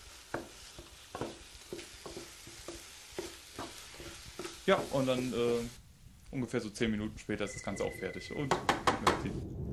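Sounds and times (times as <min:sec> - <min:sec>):
beaten eggs with milk and seasoning sizzling in a pan: 0:00.0 - 0:08.9
utensil scraping and stirring eggs in a pan: 0:00.3 - 0:05.3
speech: 0:04.7 - 0:09.6.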